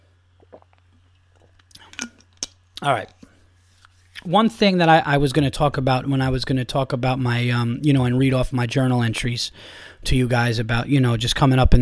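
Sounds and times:
person sipping iced tea: 0:00.4 - 0:02.4
soft wet mouth sounds: 0:00.4 - 0:02.8
speech: 0:02.8 - 0:03.2, 0:04.2 - 0:11.8.

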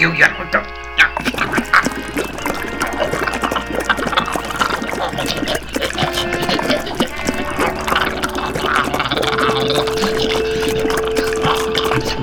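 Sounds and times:
speech: 0:00.0 - 0:00.3
green antifreeze poured into a man's mouth gurgling and sputtering: 0:00.0 - 0:12.2
man choking and spluttering: 0:00.8 - 0:12.2
laughter: 0:05.3 - 0:12.2.

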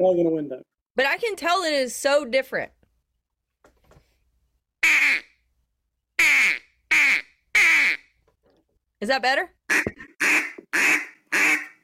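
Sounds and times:
speech: 0:00.0 - 0:02.8, 0:09.0 - 0:11.6
nasal quacks blown on a duck call: 0:04.8 - 0:05.4, 0:06.2 - 0:08.1, 0:09.7 - 0:11.8.

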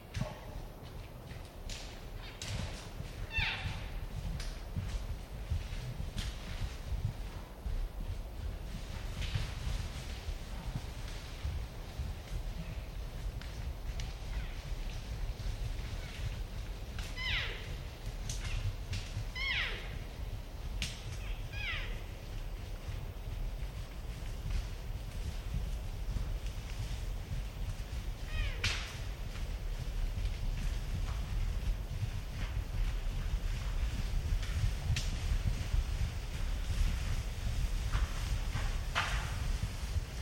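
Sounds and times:
heavy low rumble of wind: 0:00.0 - 0:40.1
sharp cracks and thumps of a moving Roosevelt elk herd: 0:38.9 - 0:39.3.

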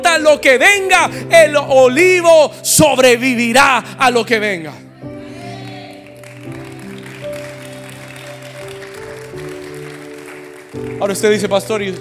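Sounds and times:
speech: 0:00.2 - 0:04.8, 0:11.0 - 0:11.9
large audience applauding: 0:05.5 - 0:11.9.

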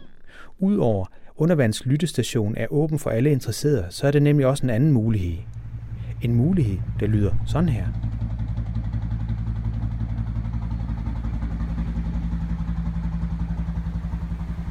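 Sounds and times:
speech: 0:00.5 - 0:05.6, 0:06.2 - 0:08.2
slow-revving diesel ship engine chugging: 0:05.0 - 0:14.6.

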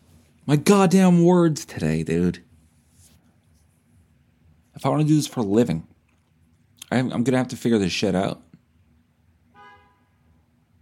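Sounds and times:
speech: 0:00.5 - 0:02.5, 0:04.8 - 0:05.9, 0:06.9 - 0:08.4
car horn honk outside: 0:09.5 - 0:10.4.

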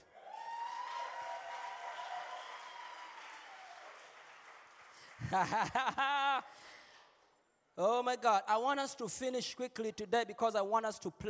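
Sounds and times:
crowd of women clapping in worship: 0:00.0 - 0:05.8
laughter: 0:05.2 - 0:06.5
speech: 0:05.2 - 0:06.8, 0:07.8 - 0:11.2.

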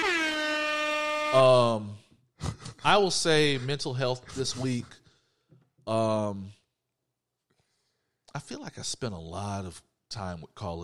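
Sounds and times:
air horn blast sound effect: 0:00.0 - 0:02.0
speech: 0:01.3 - 0:02.0, 0:02.8 - 0:05.0, 0:05.9 - 0:06.6, 0:08.4 - 0:10.8.

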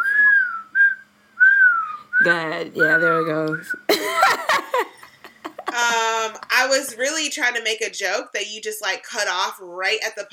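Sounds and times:
person whistling a tune: 0:00.0 - 0:02.2
speech: 0:02.2 - 0:04.4, 0:05.8 - 0:10.3
laughter: 0:03.9 - 0:06.6.

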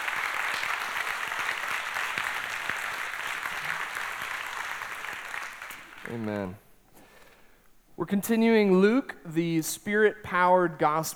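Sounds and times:
indoor crowd applause: 0:00.0 - 0:06.6
speech: 0:06.0 - 0:06.6, 0:08.0 - 0:11.1.

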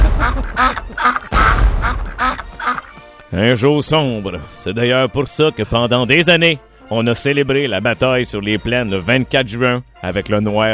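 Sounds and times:
ducks quacking: 0:00.0 - 0:03.0
speech: 0:03.4 - 0:10.7.

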